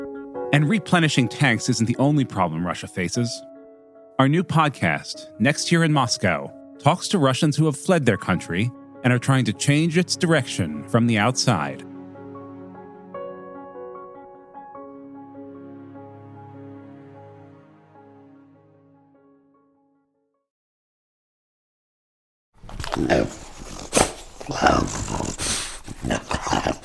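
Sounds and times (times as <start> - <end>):
speech: 0.6 - 3.5, 4.2 - 11.9, 23.0 - 23.4
French bulldog making rough guttural snorting grunts and growly rasps: 22.7 - 26.8.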